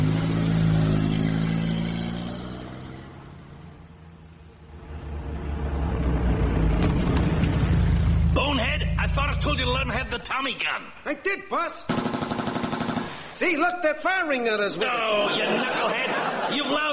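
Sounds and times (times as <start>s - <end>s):
car engine roaring as the car drives past: 0.0s - 10.3s
laughter: 1.0s - 2.1s, 8.6s - 12.2s
speech: 10.0s - 12.3s, 13.4s - 16.8s.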